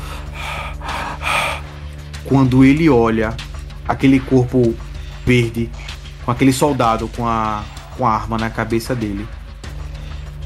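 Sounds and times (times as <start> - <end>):
person imitating heavy ragged animal breathing: 0.0 - 1.8
speech: 2.3 - 9.4.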